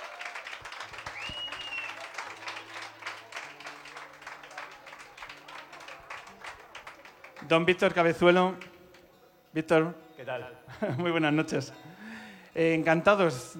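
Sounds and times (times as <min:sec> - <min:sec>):
audience applause for a band: 0:00.0 - 0:08.8
whistle: 0:01.0 - 0:02.0
speech: 0:07.5 - 0:08.7, 0:09.5 - 0:11.9, 0:12.6 - 0:13.5
laughter: 0:10.6 - 0:11.5.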